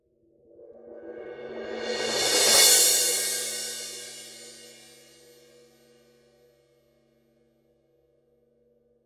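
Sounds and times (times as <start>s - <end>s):
18 inch thin Paiste crash cymbal roll: 1.6s - 5.8s.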